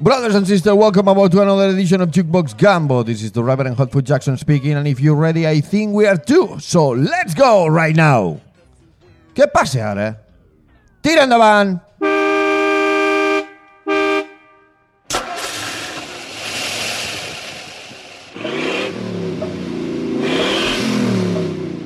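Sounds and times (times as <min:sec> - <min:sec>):
speech: 0:00.0 - 0:08.4, 0:09.4 - 0:10.2, 0:11.0 - 0:12.2
car horn blasts: 0:11.9 - 0:15.1
car engine starting and revving: 0:15.1 - 0:21.8.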